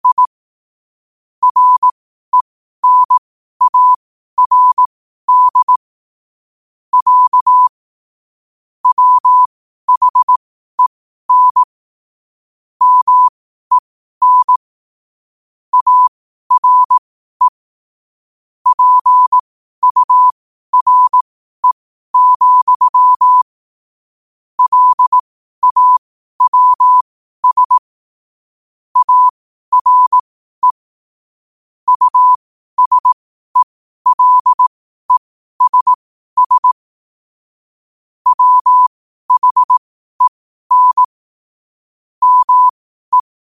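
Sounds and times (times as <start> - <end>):
Morse code mid-pitched tone at 12 words per minute: 0.0 - 0.3, 1.4 - 2.0, 2.8 - 5.8, 7.0 - 7.7, 8.8 - 10.4, 11.3 - 11.7, 12.8 - 14.6, 15.7 - 17.6, 18.7 - 23.5, 24.6 - 27.8, 29.0 - 30.8, 31.9 - 36.8, 38.3 - 41.2, 42.2 - 43.3.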